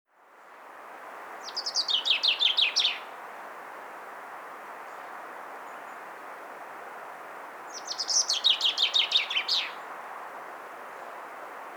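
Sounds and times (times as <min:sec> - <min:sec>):
common chaffinch song, Fringilla coelebs: 0:01.4 - 0:03.1, 0:07.7 - 0:09.8.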